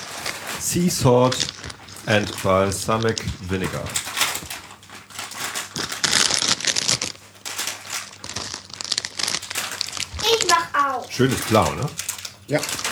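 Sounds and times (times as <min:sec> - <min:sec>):
plastic chip bag crinkling and being torn open: 0:00.0 - 0:12.9
speech: 0:00.7 - 0:04.1, 0:11.2 - 0:12.9.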